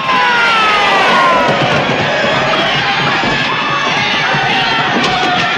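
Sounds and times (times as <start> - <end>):
higher yells above the crowd: 0.0 - 3.9
large angry crowd of protesters shouting: 0.0 - 5.4.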